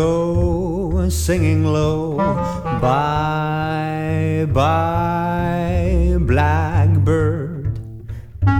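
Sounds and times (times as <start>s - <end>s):
swing band combo playing: 0.2s - 7.5s.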